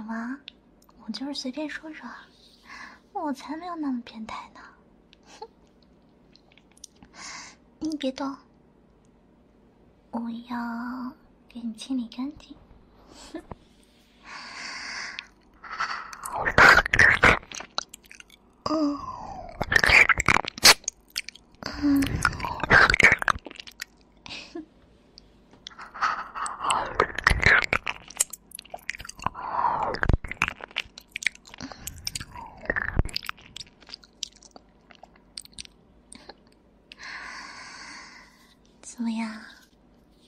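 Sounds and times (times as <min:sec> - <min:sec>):
speech: 0:00.1 - 0:02.4, 0:03.2 - 0:05.6, 0:07.2 - 0:08.5, 0:10.1 - 0:12.6, 0:13.2 - 0:13.6, 0:18.7 - 0:19.1
breathing: 0:02.4 - 0:03.1, 0:07.1 - 0:07.6, 0:13.0 - 0:16.2, 0:36.9 - 0:38.6
chewing newly bought candy: 0:15.1 - 0:18.6, 0:19.5 - 0:24.3, 0:25.6 - 0:37.0.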